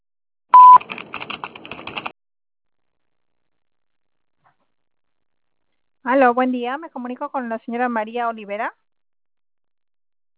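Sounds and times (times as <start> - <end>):
voicemail recording tone beep on a telephone line: 0.6 - 0.8
faint rapid clicking and tapping: 0.8 - 2.1
speech: 6.1 - 8.8.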